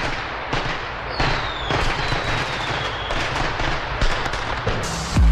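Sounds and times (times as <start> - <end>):
firecrackers popping: 0.0 - 5.2
rising firework whistle: 1.1 - 3.4.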